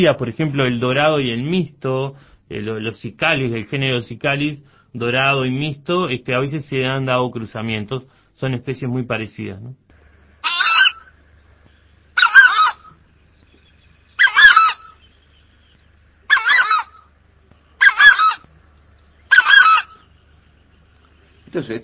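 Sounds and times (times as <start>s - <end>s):
speech: 0.0s - 9.8s, 21.6s - 21.8s
southern screamer alarm calls: 10.0s - 21.8s.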